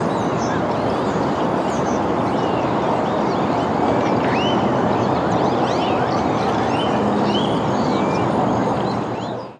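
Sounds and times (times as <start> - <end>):
birds on a street in Houston: 0.0 - 9.5.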